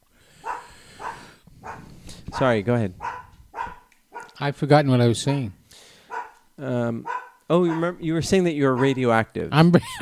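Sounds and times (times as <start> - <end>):
dog barking: 0.4 - 4.4, 6.1 - 6.4, 7.0 - 8.0, 8.7 - 9.1
speech: 2.4 - 3.0, 4.4 - 5.6, 6.6 - 10.0.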